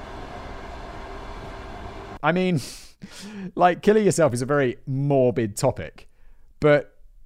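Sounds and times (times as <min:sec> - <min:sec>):
freight train rolling past: 0:00.0 - 0:02.2
speech: 0:02.2 - 0:06.9.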